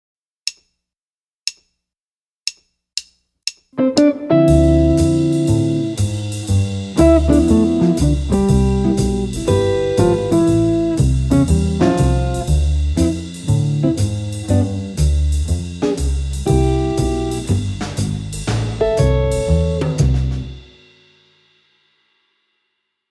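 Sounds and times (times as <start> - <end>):
jazz guitar: 3.8 - 20.7.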